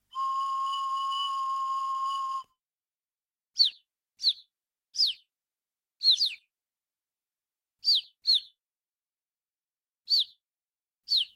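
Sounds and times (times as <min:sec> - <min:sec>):
sparrow call whistle: 0:00.0 - 0:02.6, 0:03.6 - 0:05.3, 0:06.0 - 0:06.5, 0:07.8 - 0:08.6, 0:10.1 - 0:10.4, 0:11.1 - 0:11.3.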